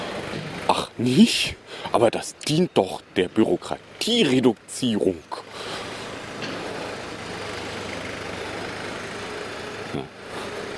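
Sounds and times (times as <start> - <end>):
heavy tractor engine droning: 0.0 - 10.7
speech: 1.0 - 5.4
clunk: 6.4 - 6.7.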